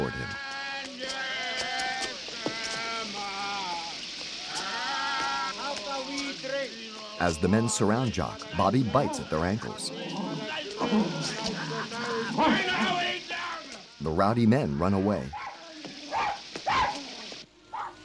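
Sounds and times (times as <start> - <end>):
steady rain falling at night: 0.0 - 18.0
speech: 7.2 - 10.2, 10.9 - 11.6, 14.0 - 15.4
laughter: 7.2 - 14.2
small dog barking in the rain in an alley at night: 15.3 - 17.1, 17.7 - 18.0.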